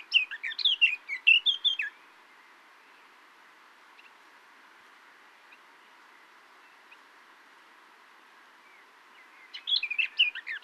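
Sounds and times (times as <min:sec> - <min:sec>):
Eurasian blackcap Sylvia atricapilla calling: 0:00.0 - 0:02.0, 0:09.2 - 0:10.6.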